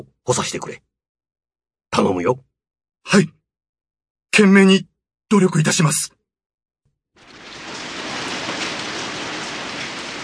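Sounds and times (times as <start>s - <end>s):
speech: 0.0s - 0.9s, 2.0s - 3.4s, 4.4s - 6.2s
cold sleety rain falling at night: 7.2s - 10.2s.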